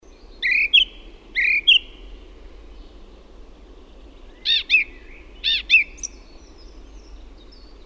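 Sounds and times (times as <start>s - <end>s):
song thrush song with repeated whistled phrases: 0.0s - 2.0s, 3.8s - 7.8s.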